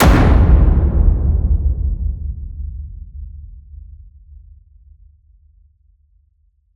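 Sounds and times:
cinematic epic drum hits: 0.0 - 3.3.

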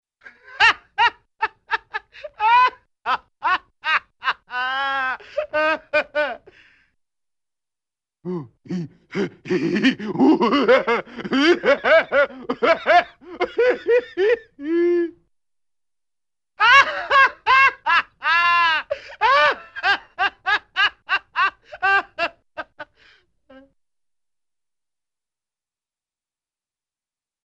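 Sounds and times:
funny goofy cartoon laughs: 0.2 - 6.5, 9.1 - 14.8, 16.6 - 23.0.

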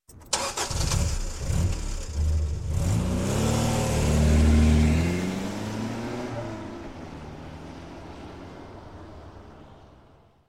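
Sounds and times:
Toyota car: 0.1 - 10.4.

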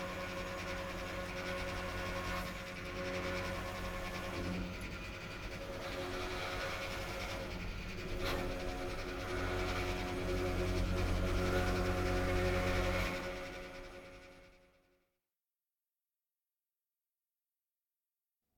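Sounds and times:
strange machine: 0.2 - 14.3.

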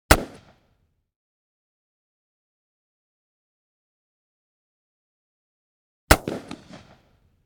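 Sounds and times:
12 gauge shotgun blast: 0.1 - 0.6, 6.1 - 7.2.

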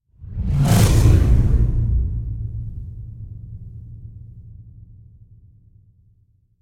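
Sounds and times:
heavy air rip whoosh: 0.1 - 3.8.

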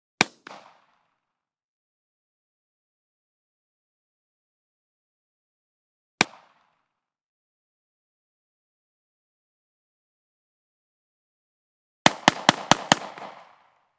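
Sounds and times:
.45 ACP pistol long rapid fire blast: 0.2 - 1.1, 12.1 - 13.7.

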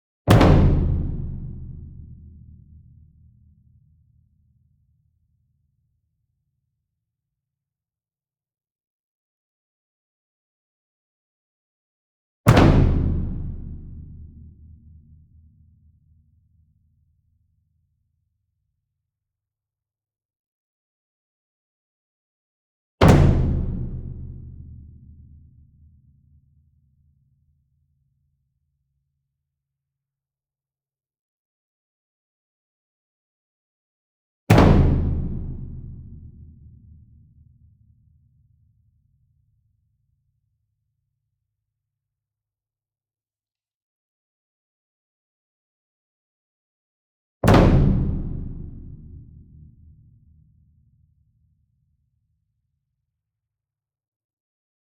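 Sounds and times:
medium concert bass drum flam in a drum ensemble: 0.3 - 2.3, 12.5 - 14.3, 23.0 - 25.0, 34.5 - 36.5, 47.4 - 49.4.

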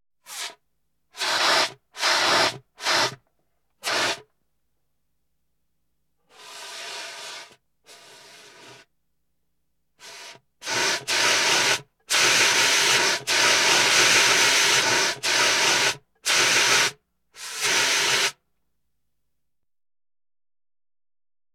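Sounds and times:
fire extinguishers: 0.3 - 0.6, 1.2 - 3.2, 3.8 - 4.2, 6.3 - 8.9, 10.0 - 18.4.

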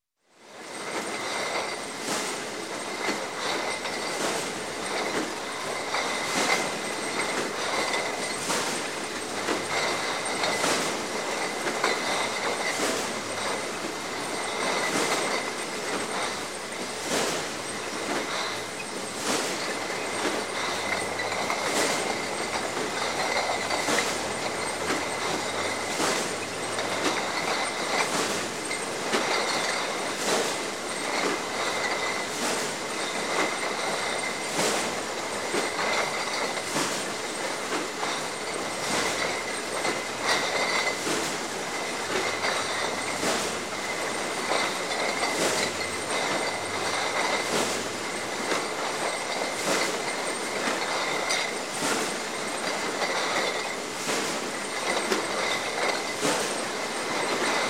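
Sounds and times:
bottles on conveyor belt in bottling plant: 0.4 - 57.6.

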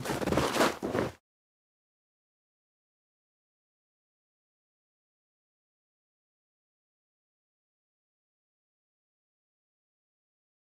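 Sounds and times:
scuffing in snow: 0.0 - 1.2.

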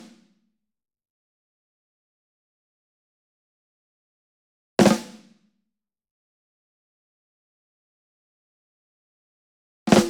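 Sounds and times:
ensemble snare drum group flams: 4.8 - 5.3.

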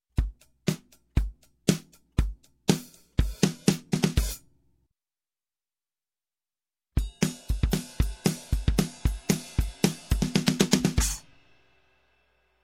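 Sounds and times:
rock drum bridge: 0.2 - 4.4, 7.0 - 11.6.

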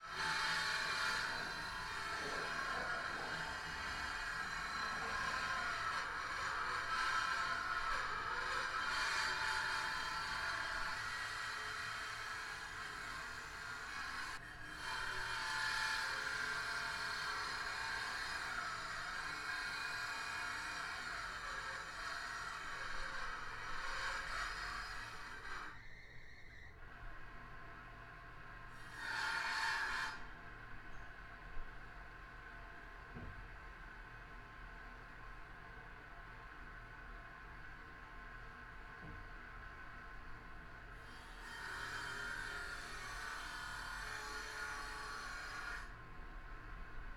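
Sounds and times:
circular saw: 0.0 - 27.5, 28.4 - 31.3, 40.3 - 47.1.

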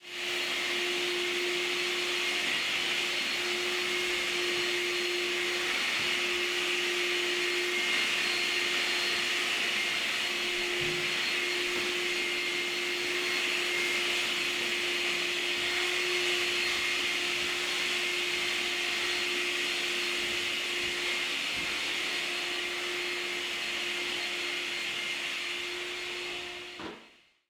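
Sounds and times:
vacuum cleaner run by a person: 0.0 - 27.3.

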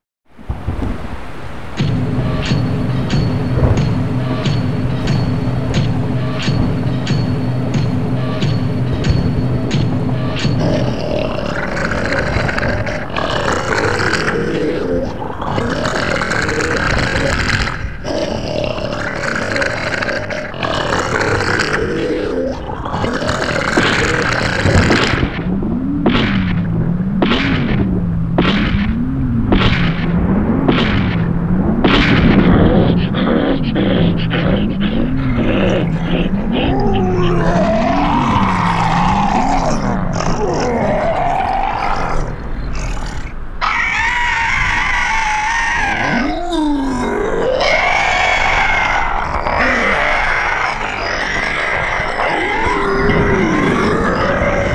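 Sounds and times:
Halloween monster sound effects: 0.8 - 54.7.

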